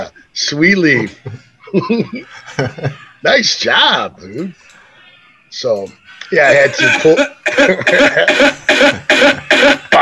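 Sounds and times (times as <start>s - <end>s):
speech: 0.4s - 4.7s, 5.5s - 9.9s
laughter: 1.0s - 3.2s, 6.4s - 10.0s
loud harsh cough from a song's intro: 6.8s - 10.0s.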